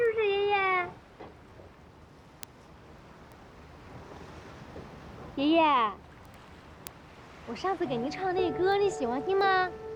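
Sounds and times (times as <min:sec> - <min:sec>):
blustery wind at the shore: 0:00.0 - 0:09.9
sea surf at the shore: 0:00.3 - 0:09.9
speech: 0:05.4 - 0:06.0, 0:07.5 - 0:09.9.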